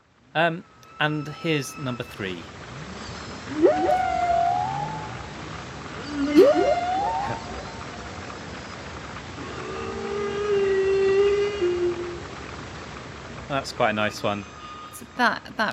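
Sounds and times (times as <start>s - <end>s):
speech: 0.4s - 2.6s, 3.5s - 4.2s, 13.5s - 14.6s, 15.2s - 15.7s
hissy underwater background: 1.0s - 12.9s, 13.5s - 14.5s
humpback whale song: 2.8s - 8.5s, 9.4s - 12.6s.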